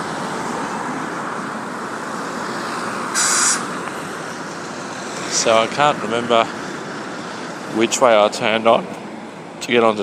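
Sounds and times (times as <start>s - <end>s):
city bus rumbling along road: 0.0s - 10.0s
steady traffic roar: 0.0s - 10.0s
high-pitched squeal: 2.8s - 3.8s
speech: 5.4s - 6.6s, 7.7s - 9.0s, 9.6s - 10.0s.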